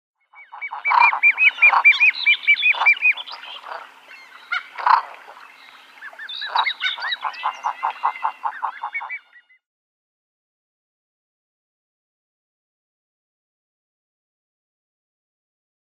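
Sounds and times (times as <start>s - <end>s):
Common Eider downy young: 0.4s - 9.5s.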